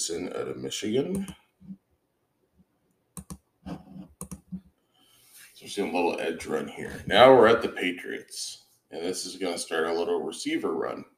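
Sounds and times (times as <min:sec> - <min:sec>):
speech: 0:00.0 - 0:01.8, 0:05.6 - 0:11.1
computer mouse clicking: 0:01.1 - 0:01.4, 0:03.2 - 0:03.4, 0:04.2 - 0:04.6.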